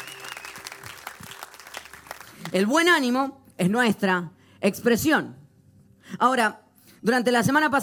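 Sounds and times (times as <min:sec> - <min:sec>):
congregation applauding: 0:00.0 - 0:02.6
speech: 0:02.5 - 0:05.4, 0:06.1 - 0:07.8.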